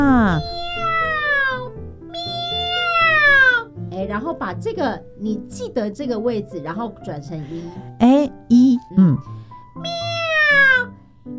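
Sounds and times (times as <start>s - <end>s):
voice imitating a cat meowing during a nasal singing exercise: 0.0s - 3.7s, 9.8s - 10.9s
speech: 4.5s - 10.0s.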